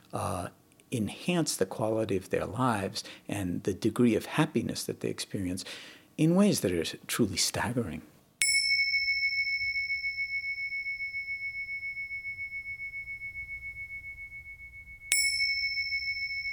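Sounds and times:
speech: 0:00.1 - 0:08.1
meditation bell ringing: 0:08.4 - 0:16.5.

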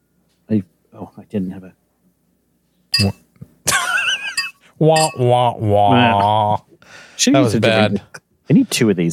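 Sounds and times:
speech: 0:00.5 - 0:01.8, 0:03.0 - 0:03.2, 0:04.8 - 0:09.1
glasses clinking in a toast: 0:03.0 - 0:03.2, 0:04.2 - 0:05.3.

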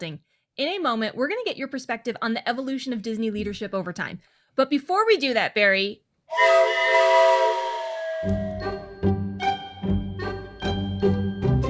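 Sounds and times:
speech: 0:00.0 - 0:07.2
loud steam train whistle blowing a sustained chord: 0:06.3 - 0:09.0
upbeat rhythmic musical jingle with steady beats: 0:06.3 - 0:11.6.

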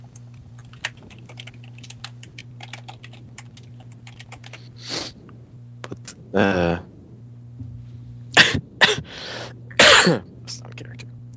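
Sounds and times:
low steady hum: 0:00.0 - 0:11.3
speech: 0:06.3 - 0:06.8
harsh abrupt coughs: 0:08.4 - 0:10.3.

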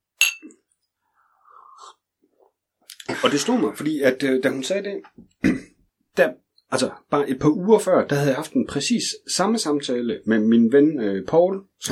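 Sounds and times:
glasses clinking in a toast: 0:00.2 - 0:00.6
speech: 0:03.2 - 0:05.6, 0:06.2 - 0:11.9.

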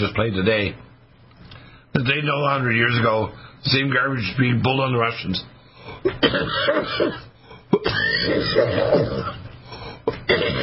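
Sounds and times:
speech: 0:00.0 - 0:00.9, 0:02.0 - 0:09.4, 0:10.3 - 0:10.6
harsh coughs: 0:06.0 - 0:09.4, 0:10.1 - 0:10.6.

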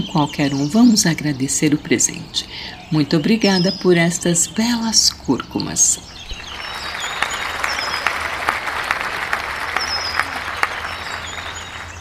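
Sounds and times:
speech: 0:00.0 - 0:06.2
applause sound effect from a soundboard: 0:06.4 - 0:11.9.

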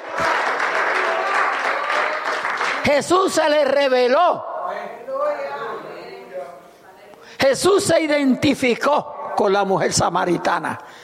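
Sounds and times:
congregation applauding during a church service: 0:00.0 - 0:03.1
speech: 0:02.8 - 0:04.5, 0:07.4 - 0:11.0.

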